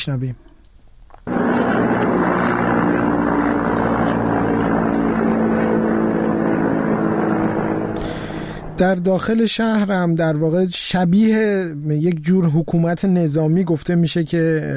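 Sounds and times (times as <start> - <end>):
speech: 0.0 - 0.5, 8.8 - 14.7
helicopters flying over a city: 1.3 - 9.5.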